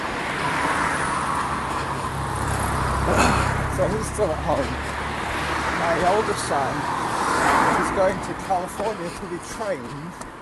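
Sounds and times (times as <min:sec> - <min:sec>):
constant wash of road traffic: 0:00.0 - 0:10.4
small car driving past: 0:00.7 - 0:05.6
speech: 0:03.8 - 0:05.0, 0:05.9 - 0:07.0, 0:08.0 - 0:10.4.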